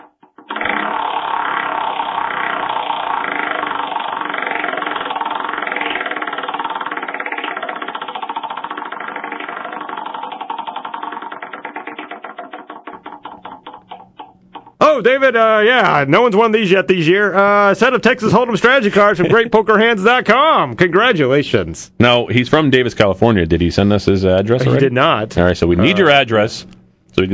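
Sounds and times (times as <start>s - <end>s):
prize wheel spinning with clicks: 0.0s - 14.9s
speech: 15.0s - 27.3s.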